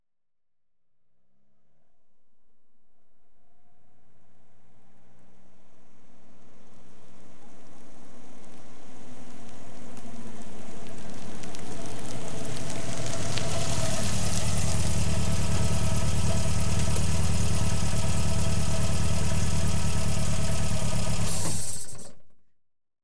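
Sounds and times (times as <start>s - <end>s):
cars approaching from left outdoors: 3.8s - 21.2s.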